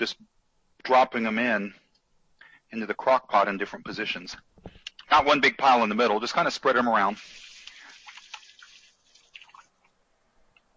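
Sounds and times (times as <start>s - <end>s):
speech: 0.0s - 1.8s, 2.7s - 4.5s, 5.1s - 7.4s
tap water splashing as hands are washed during cooking: 7.4s - 9.7s.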